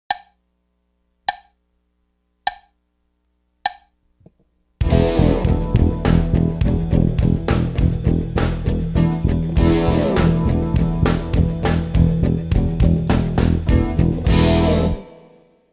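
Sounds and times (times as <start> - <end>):
drums: 4.8 - 15.1.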